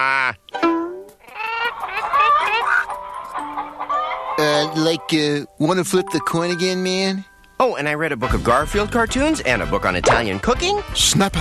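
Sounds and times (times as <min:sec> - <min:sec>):
chickens clucking and squawking: 0:01.1 - 0:05.0
speech: 0:04.4 - 0:11.3.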